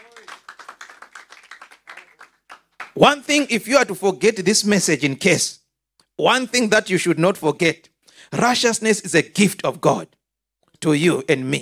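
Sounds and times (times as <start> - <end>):
audience clapping: 0.0 - 3.6
speech: 3.0 - 5.6, 6.2 - 10.2, 10.8 - 11.5.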